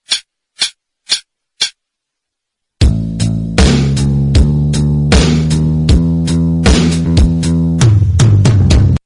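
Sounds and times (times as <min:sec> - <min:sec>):
blues backing track: 0:02.8 - 0:09.0.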